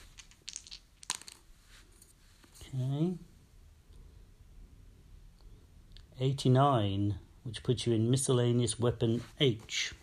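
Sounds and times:
dice tumbling and clattering across a hard table: 0.0 - 1.5
louder knock of dice on a hard table: 0.1 - 1.4
speech: 2.7 - 3.2, 6.2 - 10.0.

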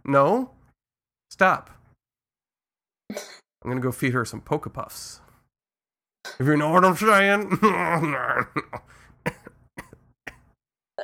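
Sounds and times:
speech: 0.1 - 0.6, 1.3 - 1.8, 3.1 - 5.2, 6.3 - 9.4
person with a cold coughing: 3.1 - 3.5, 9.3 - 11.0
laughter: 7.5 - 9.5
throat clearing: 9.3 - 11.0.

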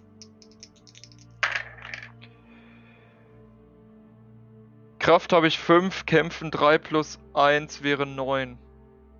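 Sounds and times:
dice rolled during a tabletop role-playing game: 0.2 - 2.2
speech: 5.0 - 8.6.

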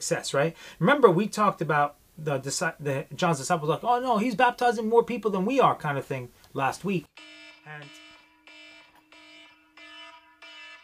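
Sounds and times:
speech: 0.0 - 8.0
electronic alarm buzzing: 7.1 - 10.8.

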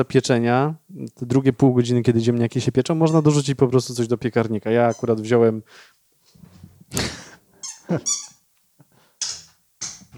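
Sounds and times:
speech: 0.0 - 6.0, 6.9 - 7.2, 7.9 - 8.3
dog whining and yelping in the room: 7.6 - 8.4.

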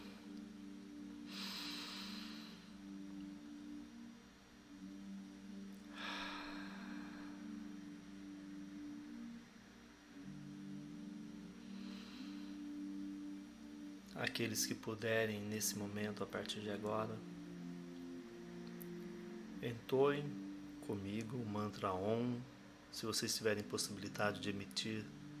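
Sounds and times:
steady low hum: 0.0 - 25.3
slow deep breaths in a breathing exercise: 1.2 - 2.9, 5.8 - 7.8, 11.6 - 13.3
speech: 14.2 - 17.4, 19.6 - 25.2.

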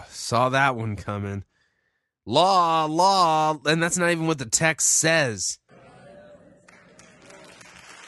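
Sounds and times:
speech: 0.2 - 1.5, 2.3 - 5.6
crowd clapping in a played sermon recording: 6.6 - 8.0.

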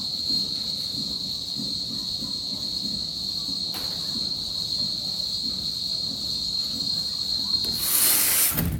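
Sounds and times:
cicadas singing at midday in Cali, Colombia: 0.0 - 8.7
burst of hiss: 7.6 - 8.7.

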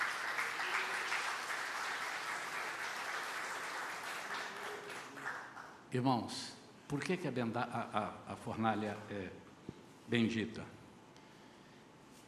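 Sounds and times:
audience applauding in a large room: 0.0 - 5.8
speech: 5.9 - 9.5, 10.1 - 10.8.

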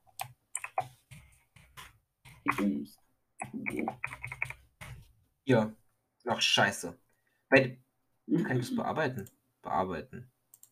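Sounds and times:
typing on a computer keyboard while writing a chat message: 0.0 - 1.3, 3.4 - 4.6
speech: 2.5 - 4.3, 5.5 - 10.3.

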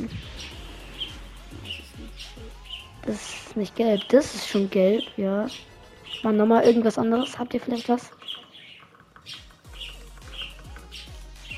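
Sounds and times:
low swooping sounds: 0.0 - 5.0
parrot squawking: 0.0 - 11.5
speech: 3.1 - 8.4.

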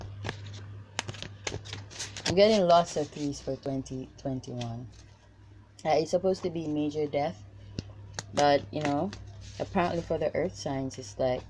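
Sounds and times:
shuffling a deck of tarot cards: 0.0 - 3.6, 4.4 - 5.2, 7.7 - 11.4
faint steady hum: 0.0 - 11.4
speech: 2.3 - 5.0, 5.8 - 7.4, 8.3 - 11.4.

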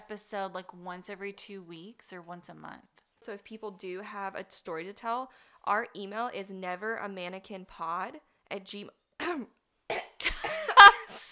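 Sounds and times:
speech: 0.1 - 10.0
person with a cold clearing throat: 9.2 - 11.0
person with a cold coughing: 9.2 - 11.3.

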